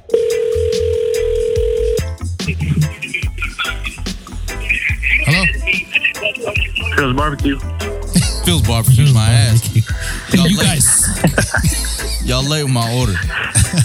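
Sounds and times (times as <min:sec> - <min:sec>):
buzzing telephone ringback tone on an outgoing call: 0:00.1 - 0:02.0
laughter: 0:02.4 - 0:13.8
speech: 0:07.1 - 0:07.7, 0:08.4 - 0:13.8.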